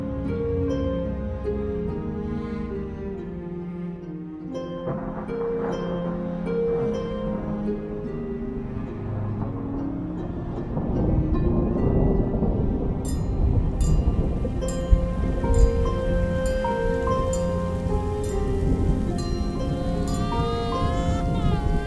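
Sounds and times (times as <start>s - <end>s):
steady heavy rain: 0.0s - 21.8s
thunder rumbling and crashing with lightning: 4.7s - 21.8s.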